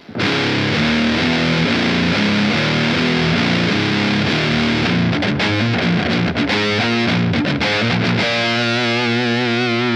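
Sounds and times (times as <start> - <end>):
electric guitar through distortion pedal playing chord riffs: 0.0 - 9.9.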